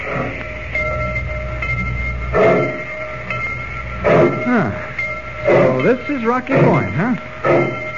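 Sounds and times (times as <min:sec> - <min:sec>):
train pulling out of station rumbling: 0:00.0 - 0:07.9
whistle-like humming tones: 0:00.0 - 0:07.9
speech: 0:05.9 - 0:07.8.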